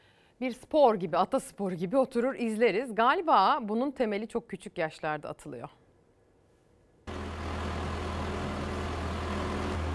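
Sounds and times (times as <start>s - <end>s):
speech: 0.4s - 5.8s
heavy excavator diesel engine running on a street: 7.1s - 9.9s.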